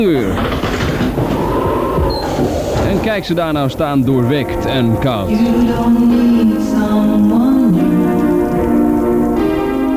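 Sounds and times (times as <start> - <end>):
speech: 0.0 - 0.6, 3.0 - 7.4
laughter: 0.0 - 9.7
1974 tram rumbling along rails in The Hague: 0.0 - 9.9
tram wheel squeal: 0.0 - 9.9.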